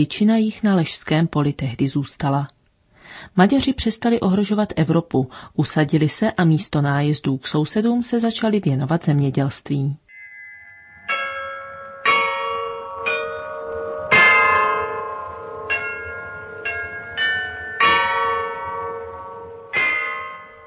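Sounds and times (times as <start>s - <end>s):
speech: 0.0s - 10.0s
carillon of the Loreto in Prague, Czech Republic playing a slow melody: 10.1s - 20.6s.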